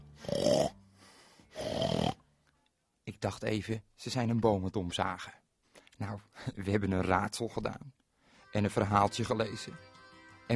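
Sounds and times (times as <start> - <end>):
man snoring loudly: 0.2 - 0.8, 1.5 - 2.2
speech: 3.1 - 5.4, 6.0 - 9.9.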